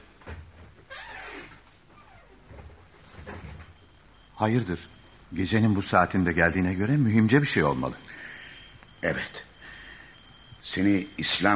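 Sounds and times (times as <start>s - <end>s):
door scraping creak as it swings: 0.2s - 3.9s
speech: 4.4s - 8.1s, 9.0s - 9.4s, 10.8s - 11.5s.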